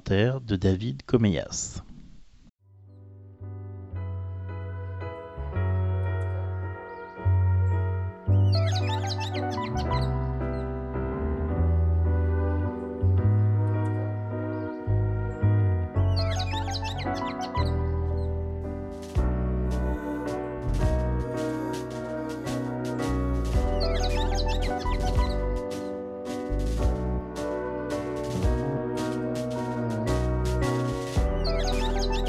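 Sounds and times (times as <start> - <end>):
speech: 0.1 - 1.9
loud music with keys and drums: 4.1 - 32.2
recorded birdsong from Martinique, high bird chirping: 8.3 - 10.6, 16.0 - 18.3, 23.6 - 26.0, 31.2 - 32.2.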